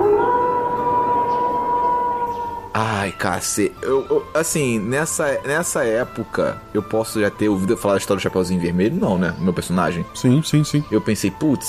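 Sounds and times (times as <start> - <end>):
distant wolf howl: 0.0 - 2.8
speech: 2.8 - 11.6.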